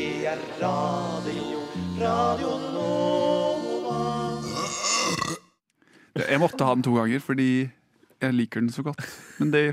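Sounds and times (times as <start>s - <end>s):
speech: 0.2s - 3.4s, 6.2s - 9.7s
loud deep burp: 4.4s - 5.6s.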